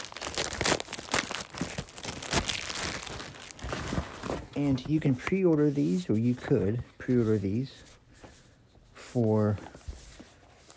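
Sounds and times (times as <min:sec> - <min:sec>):
tape tearing from earbuds packaging: 0:00.0 - 0:04.5
plastic wrap crinkling as earbuds are unwrapped from packaging: 0:00.0 - 0:06.5
speech: 0:04.6 - 0:07.9, 0:09.2 - 0:09.8.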